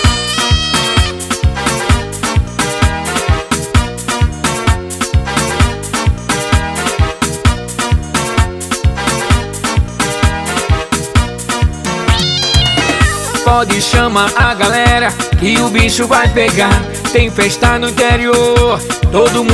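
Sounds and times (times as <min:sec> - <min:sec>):
cats meowing: 0:00.0 - 0:01.3, 0:12.1 - 0:13.5
loud busy music track with a steady driving beat: 0:00.0 - 0:19.5
speech: 0:13.6 - 0:19.5.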